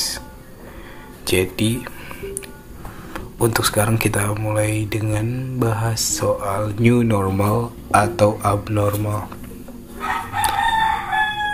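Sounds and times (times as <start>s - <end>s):
faint outdoor background: 0.0s - 11.5s
speech: 1.3s - 2.3s, 3.4s - 9.4s
rooster crowing: 10.0s - 11.5s.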